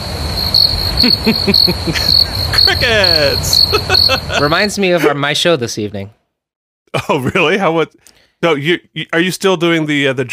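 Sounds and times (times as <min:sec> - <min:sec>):
crickets chirping in a steady high-pitched trill: 0:00.0 - 0:04.9
speech: 0:00.6 - 0:06.2, 0:07.1 - 0:10.3
laughter: 0:01.0 - 0:05.2.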